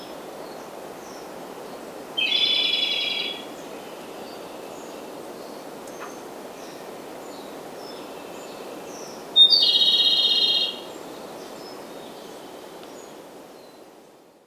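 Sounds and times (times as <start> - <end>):
steady background hiss: 0.0 - 14.4
Japanese robin song trills: 2.2 - 5.0, 7.4 - 11.0.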